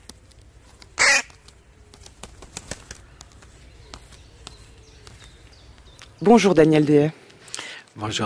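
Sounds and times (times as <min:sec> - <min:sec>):
wings flapping: 0:00.0 - 0:06.2
birds chirping: 0:00.1 - 0:08.2
crow cawing: 0:01.0 - 0:01.4
speech: 0:06.2 - 0:07.2, 0:08.0 - 0:08.2.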